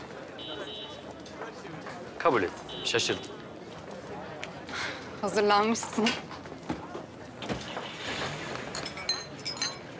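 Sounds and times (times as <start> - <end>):
faint indistinct voices: 0.0 - 9.9
speech: 2.2 - 3.4, 5.2 - 6.4
wine glasses clinking: 8.7 - 9.9.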